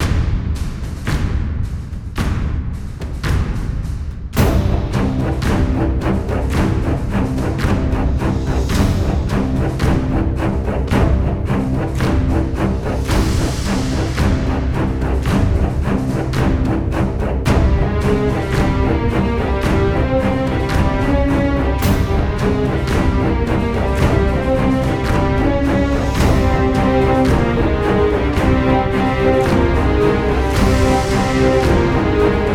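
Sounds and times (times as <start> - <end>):
epic combat music at 110 bpm: 0.0 - 32.5.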